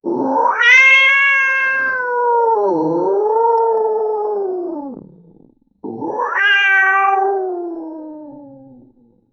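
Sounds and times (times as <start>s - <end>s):
cat roaring ferociously: 0.0s - 9.1s.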